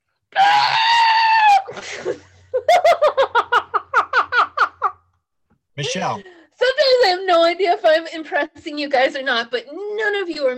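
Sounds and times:
person imitating a screaming lobster with a high-pitched shriek: 0:00.4 - 0:01.8
rhythmic cackling laughter bursts: 0:01.8 - 0:05.0
speech: 0:05.8 - 0:06.3, 0:06.9 - 0:10.5.

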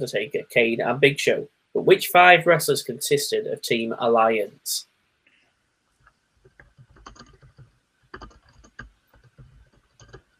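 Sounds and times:
speech: 0:00.0 - 0:04.9
rapid typing on a computer keyboard while searching on Google: 0:06.4 - 0:10.3.

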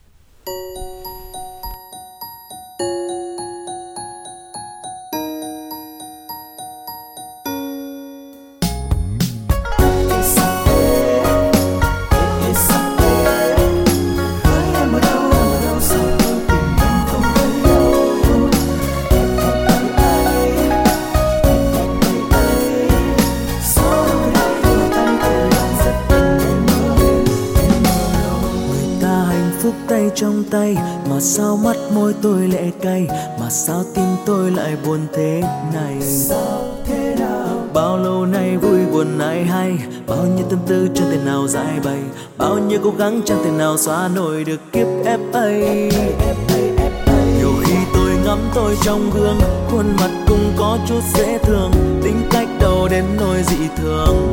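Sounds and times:
slow bell-like chiming notes of a Vietnamese pop song intro: 0:00.4 - 0:30.4
full band playing a Vietnamese pop song with drums and layered instruments: 0:08.6 - 0:54.3
speech: 0:42.9 - 0:46.4, 0:48.3 - 0:54.3.

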